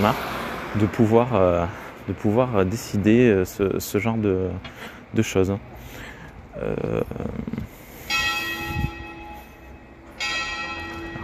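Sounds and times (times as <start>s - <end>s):
speech: 0.0s - 6.0s, 6.6s - 7.7s
village church bell tolling: 8.0s - 11.2s.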